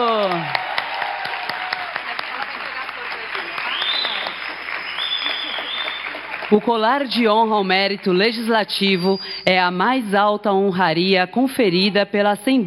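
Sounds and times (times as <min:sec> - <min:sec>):
audience applause at a Legislative Assembly ceremony in São Paulo: 0:00.0 - 0:08.1
speech: 0:06.5 - 0:12.6.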